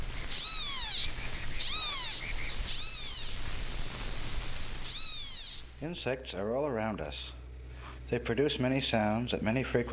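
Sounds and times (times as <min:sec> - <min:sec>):
black-tailed gnatcatcher California coastal form mewing calls: 0:00.0 - 0:05.8
speech: 0:05.8 - 0:07.4, 0:08.1 - 0:09.9.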